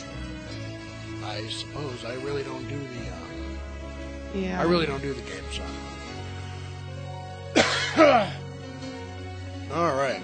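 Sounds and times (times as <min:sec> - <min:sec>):
speech: 0:01.3 - 0:03.3, 0:04.3 - 0:06.0, 0:08.0 - 0:08.4
person coughing roughly: 0:07.6 - 0:08.4.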